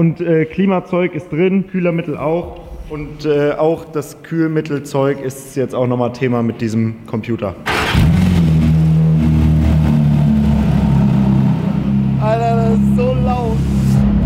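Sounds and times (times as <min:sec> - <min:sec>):
speech: 0:00.0 - 0:08.1
sports car engine revving with throttle blips: 0:07.7 - 0:14.2.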